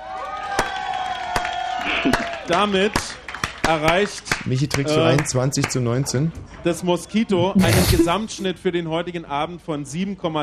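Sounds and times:
crowd applauding, cheering and whooping: 0.0 - 2.6
sharp loud claps or slaps: 0.6 - 4.8
speech: 2.0 - 10.4.

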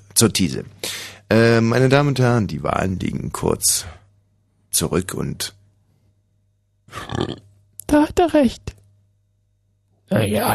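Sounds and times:
speech: 0.2 - 4.0, 4.7 - 5.6, 6.9 - 8.8, 10.1 - 10.5
short guttural burp: 6.9 - 7.5.

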